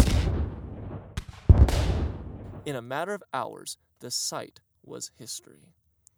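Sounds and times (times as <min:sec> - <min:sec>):
heavy explosions booming: 0:00.0 - 0:02.7
speech: 0:02.6 - 0:05.8.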